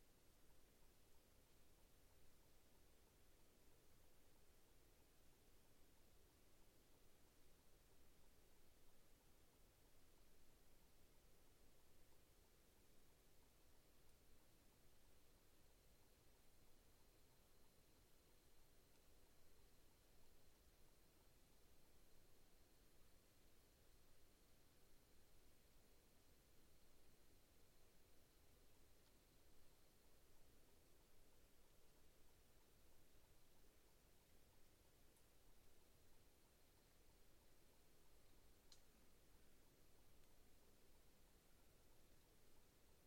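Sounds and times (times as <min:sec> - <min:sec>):
faint high insect-like whine: 0:00.0 - 0:43.0
soft steady hush of a night in the outback: 0:00.0 - 0:43.0
tiny tick: 0:38.6 - 0:39.0.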